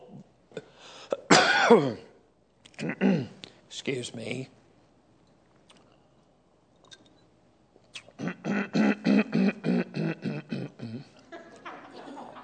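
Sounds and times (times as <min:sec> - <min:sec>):
person choking and coughing after swallowing a bug: 0:01.2 - 0:02.0, 0:02.7 - 0:03.4, 0:08.0 - 0:11.2
speech: 0:01.7 - 0:02.1, 0:02.8 - 0:04.6
laughter: 0:11.1 - 0:12.4.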